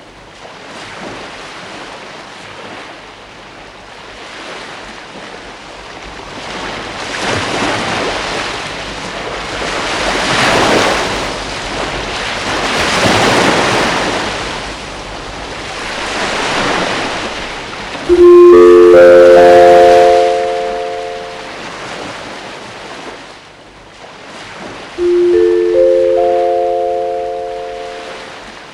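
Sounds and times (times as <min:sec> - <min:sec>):
ocean waves breaking on shore: 0:00.0 - 0:28.7
loud sustained tonal sound: 0:18.1 - 0:21.8, 0:25.0 - 0:28.5.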